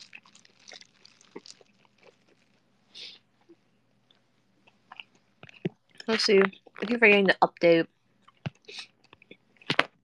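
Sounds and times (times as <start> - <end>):
crunchy food being chewed: 0.0 - 3.2, 4.1 - 6.9, 8.2 - 10.0
speech: 6.1 - 8.0.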